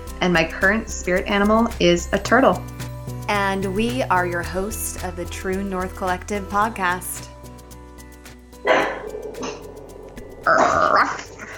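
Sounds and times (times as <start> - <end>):
speech: 0.2 - 7.3
dogs barking: 8.6 - 10.4
dogs snarling and growling: 8.6 - 11.5.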